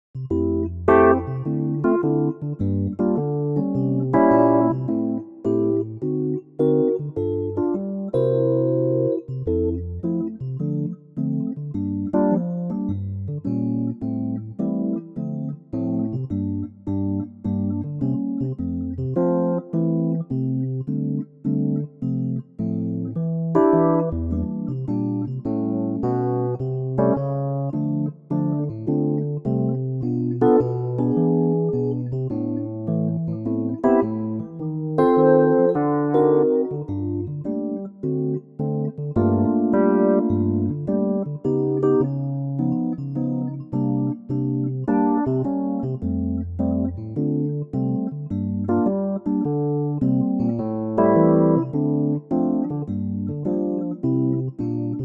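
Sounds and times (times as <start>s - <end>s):
electric piano in F: 0.2s - 55.0s.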